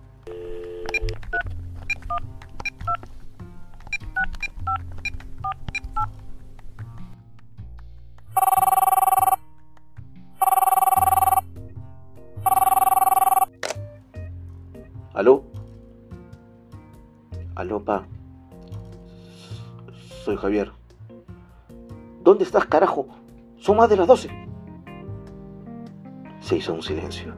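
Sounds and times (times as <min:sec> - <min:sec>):
telephone ringing during a call: 0:00.3 - 0:01.2, 0:08.4 - 0:09.4, 0:10.4 - 0:11.6, 0:12.4 - 0:13.6
phone keypad beeps dialing a number: 0:00.3 - 0:03.0, 0:03.9 - 0:06.1, 0:08.4 - 0:09.5, 0:10.4 - 0:11.6, 0:12.4 - 0:13.6
speech: 0:17.7 - 0:18.1, 0:20.3 - 0:20.7, 0:22.3 - 0:24.4, 0:26.5 - 0:27.3.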